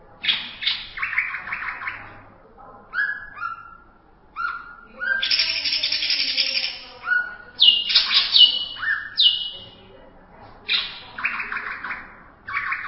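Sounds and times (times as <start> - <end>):
greater green leafbird song: 0.2 - 2.1, 4.4 - 9.8, 10.7 - 12.8.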